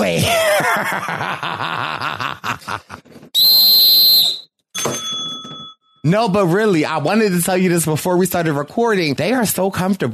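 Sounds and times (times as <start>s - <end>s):
laughter: 0.1s - 3.2s
whistle blown in a loud shrill blast: 3.4s - 4.6s
speech: 6.0s - 10.1s.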